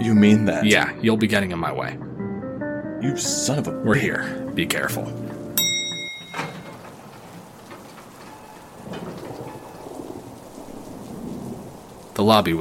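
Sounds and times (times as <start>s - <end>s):
speech: 0.1s - 2.1s, 3.0s - 5.3s, 12.2s - 12.6s
brief tonal chime: 5.6s - 6.9s
rain pattering against window glass: 5.8s - 12.6s
low rumble of thunder: 6.2s - 12.6s.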